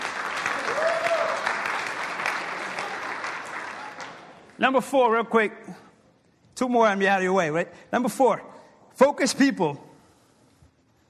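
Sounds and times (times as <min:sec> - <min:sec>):
large group of people applauding: 0:00.0 - 0:04.6
speech: 0:04.6 - 0:05.8, 0:06.6 - 0:09.9.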